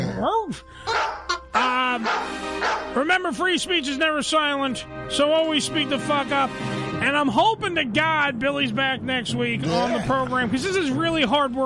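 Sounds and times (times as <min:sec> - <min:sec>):
speech: 0:00.2 - 0:00.9, 0:02.0 - 0:11.6
dog yelping and barking: 0:00.9 - 0:02.9.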